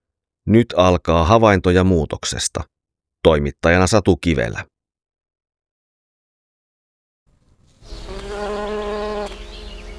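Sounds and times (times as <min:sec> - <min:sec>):
speech: 0:00.5 - 0:04.7
honeybees buzzing: 0:07.8 - 0:09.9.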